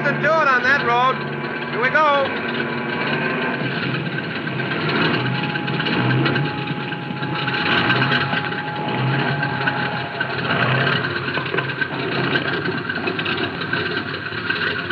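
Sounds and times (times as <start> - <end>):
small airplane engine idling after landing on a road: 0.0 - 14.9
speech: 0.4 - 2.8.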